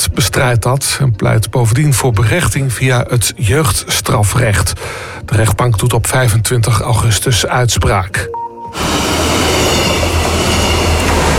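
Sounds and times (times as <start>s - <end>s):
speech: 0.2s - 9.1s
train crossing a railway bridge: 8.7s - 11.3s.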